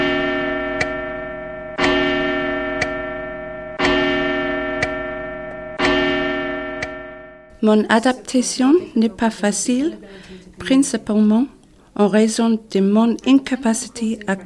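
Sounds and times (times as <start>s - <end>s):
village clock bell striking the hour: 0.0s - 7.5s
speech: 7.6s - 14.4s.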